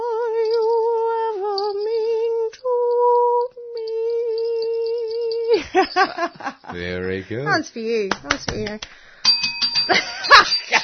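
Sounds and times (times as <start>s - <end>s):
dropped hand bell clattering and ringing: 0.0s - 2.2s, 3.0s - 6.6s, 9.2s - 10.8s
speech: 5.7s - 9.1s, 9.9s - 10.8s.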